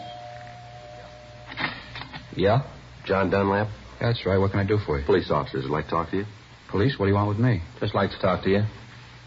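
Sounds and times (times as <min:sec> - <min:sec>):
penthouse apartment doorbell buzzing with a steady electric tone: 0:00.0 - 0:01.8
low hum: 0:00.0 - 0:09.2
speech: 0:02.4 - 0:09.2.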